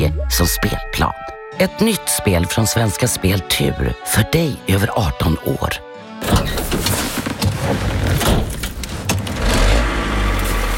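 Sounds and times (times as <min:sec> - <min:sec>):
speech: 0:00.0 - 0:06.9
truck engine running inside the cab: 0:06.3 - 0:10.7.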